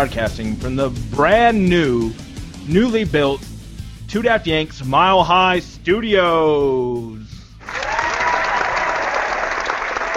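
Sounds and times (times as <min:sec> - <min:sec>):
speech: 0:00.0 - 0:03.5, 0:04.1 - 0:07.3
sizable crowd applauding: 0:07.6 - 0:10.1.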